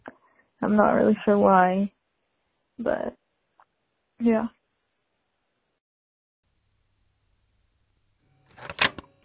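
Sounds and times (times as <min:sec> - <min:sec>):
speech: 0:00.6 - 0:01.9, 0:02.8 - 0:03.2, 0:04.2 - 0:04.6
phone handset clicks: 0:08.5 - 0:09.1.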